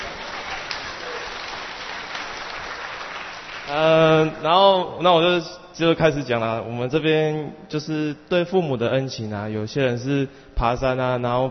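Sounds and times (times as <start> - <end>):
steady applause from a group: 0.0 - 4.4
speech: 3.7 - 11.4.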